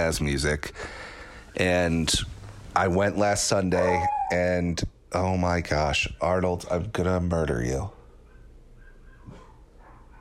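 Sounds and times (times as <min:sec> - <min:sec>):
speech: 0:00.0 - 0:08.0
faint whiny yips: 0:03.9 - 0:04.5
dog barking: 0:08.2 - 0:10.1.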